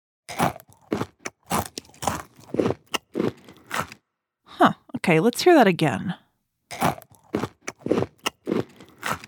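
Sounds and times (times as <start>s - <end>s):
crunchy chewing of food with crackly bites: 0.3s - 4.1s, 6.7s - 9.2s
speech: 5.1s - 6.2s.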